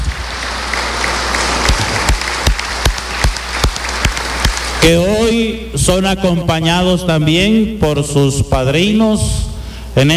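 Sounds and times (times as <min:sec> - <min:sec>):
large group applauding: 0:00.0 - 0:05.3
sharp claps in a regular rhythmic beat: 0:00.0 - 0:05.3
speech: 0:04.8 - 0:10.1.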